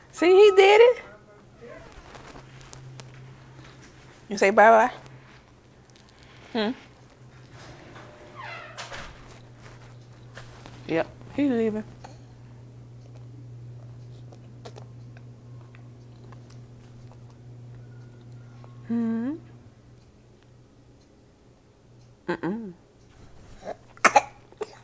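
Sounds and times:
low steady hum: 0.0 - 24.8
speech: 0.2 - 1.0, 4.3 - 5.0, 6.6 - 6.8, 10.9 - 12.0, 18.9 - 19.4, 22.3 - 22.8
person coughing: 23.7 - 24.8.

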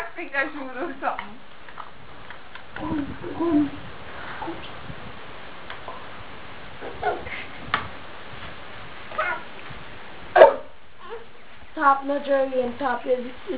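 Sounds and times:
speech: 0.2 - 1.5, 2.8 - 3.8, 11.8 - 13.5
dog barking: 10.4 - 11.3.

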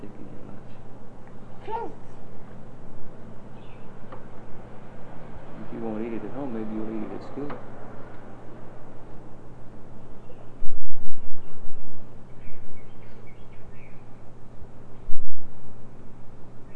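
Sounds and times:
low hum: 0.0 - 16.7
speech: 1.7 - 2.1
faint bird chirps: 10.0 - 14.2.

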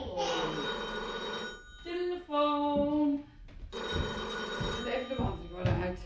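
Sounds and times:
telephone ringing: 0.2 - 2.1, 3.7 - 5.8.

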